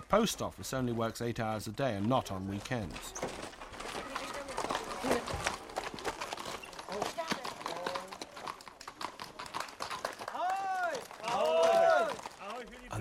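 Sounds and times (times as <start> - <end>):
mail riders' horses galloping on a country road: 0.0 - 12.9
speech: 0.1 - 3.5
horses whinnying: 2.9 - 12.5.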